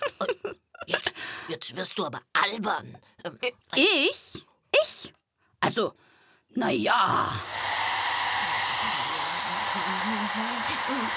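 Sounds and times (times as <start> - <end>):
speech: 1.5 - 7.6, 9.8 - 11.1
hair dryer blowing: 7.4 - 11.1.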